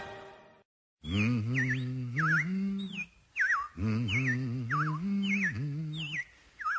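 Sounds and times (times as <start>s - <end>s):
robins chirping in spring in warbling bursts: 1.0s - 6.7s
low humming voice rising and falling: 1.1s - 3.1s, 3.7s - 6.3s.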